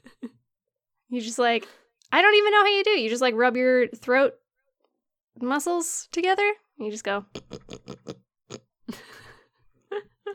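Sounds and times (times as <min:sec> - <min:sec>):
speech: 0:01.1 - 0:04.4, 0:05.4 - 0:08.1
person imitating pig grunts and snorts: 0:07.4 - 0:08.7.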